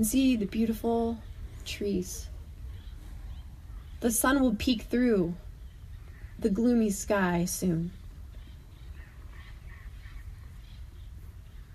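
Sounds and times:
speech: 0:00.0 - 0:02.3, 0:04.0 - 0:05.4, 0:06.4 - 0:08.0
low outdoor rumble: 0:00.0 - 0:11.7
birds chirping and squawking in a park: 0:00.9 - 0:04.6, 0:05.4 - 0:07.0, 0:07.6 - 0:11.7.

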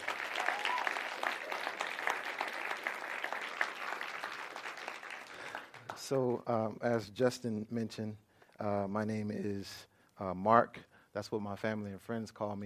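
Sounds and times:
audience clapping in praise: 0:00.0 - 0:06.4
speech: 0:06.1 - 0:12.6.

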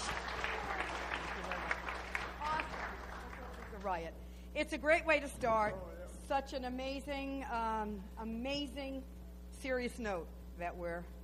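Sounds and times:
audience applauding: 0:00.0 - 0:04.0
speech: 0:03.8 - 0:11.2.

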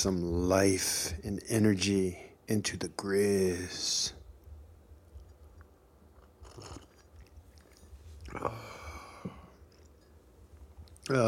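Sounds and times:
speech: 0:00.0 - 0:04.2, 0:06.6 - 0:06.8, 0:08.3 - 0:09.4, 0:11.1 - 0:11.2
quiet slurping sips of hot black coffee: 0:06.2 - 0:10.1.

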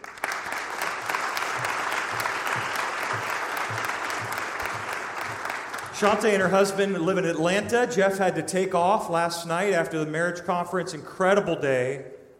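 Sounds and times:
large audience applauding a speaker on stage: 0:00.0 - 0:06.8
speech: 0:06.0 - 0:12.3.

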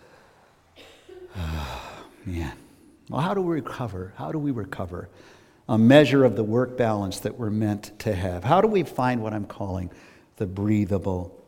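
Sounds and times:
person taking a deep breath: 0:01.3 - 0:02.2, 0:05.1 - 0:05.7, 0:09.9 - 0:10.3
speech: 0:02.3 - 0:11.4.

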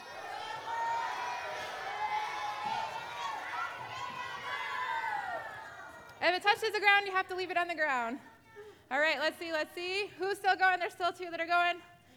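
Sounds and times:
children cheering and shouting during a balloon game: 0:00.0 - 0:06.1
speech: 0:06.2 - 0:08.3, 0:08.9 - 0:11.9.

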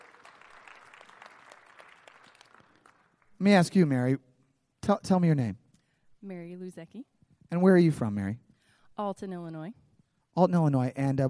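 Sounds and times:
audience applause: 0:00.0 - 0:03.4
speech: 0:03.4 - 0:05.6, 0:06.2 - 0:08.4, 0:09.0 - 0:09.8, 0:10.4 - 0:11.2.

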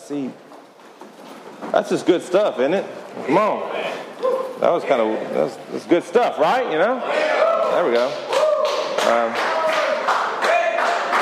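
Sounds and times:
speech: 0:00.1 - 0:00.5, 0:01.7 - 0:03.8, 0:04.6 - 0:08.3, 0:09.0 - 0:09.5
audience clapping: 0:07.8 - 0:11.2.

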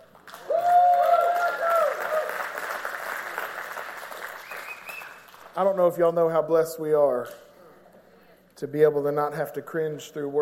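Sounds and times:
audience applauding: 0:00.0 - 0:05.6
scattered voices and cheers: 0:00.4 - 0:02.5
speech: 0:05.6 - 0:07.5, 0:08.6 - 0:10.3.

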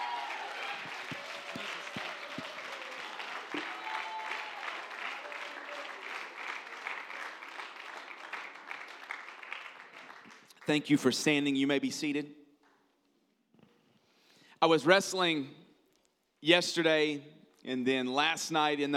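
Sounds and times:
shouts and cheers from many voices: 0:00.0 - 0:07.5
audience applauding enthusiastically in a large room: 0:00.0 - 0:10.6
speech: 0:10.7 - 0:12.4, 0:14.6 - 0:15.6, 0:16.4 - 0:18.9.

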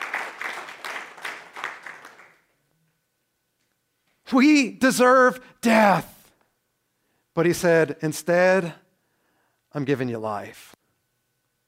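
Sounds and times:
audience applause: 0:00.0 - 0:02.5
speech: 0:04.3 - 0:06.1, 0:07.4 - 0:08.8, 0:09.7 - 0:10.8.

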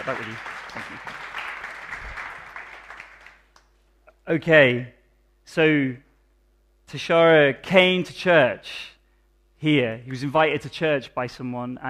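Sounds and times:
speech: 0:00.0 - 0:01.4, 0:04.3 - 0:06.0, 0:06.9 - 0:08.9, 0:09.6 - 0:11.8
crowd applauding: 0:00.0 - 0:03.6.

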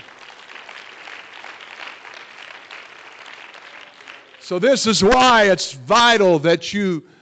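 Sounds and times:
audience clapping hands to praise the Lord: 0:00.0 - 0:05.4
speech: 0:04.5 - 0:07.1.

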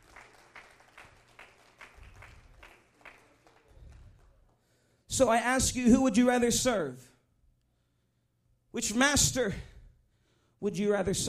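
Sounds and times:
audience clapping hands in a steady rhythmic beat: 0:00.0 - 0:04.9
speech: 0:05.2 - 0:07.1, 0:08.8 - 0:09.7, 0:10.6 - 0:11.2.

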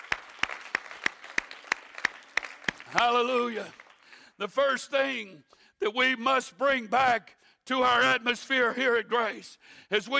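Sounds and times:
audience clapping hands in unison rhythm: 0:00.0 - 0:04.4
speech: 0:02.9 - 0:03.8, 0:04.4 - 0:10.1.

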